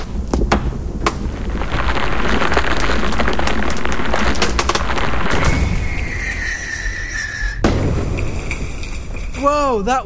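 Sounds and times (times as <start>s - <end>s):
firework crackling blast inside a shed: 0.0s - 9.8s
sharp bang: 5.3s - 6.5s, 7.6s - 9.2s
rising whistle-like tone: 5.4s - 7.6s
speech: 9.8s - 10.0s.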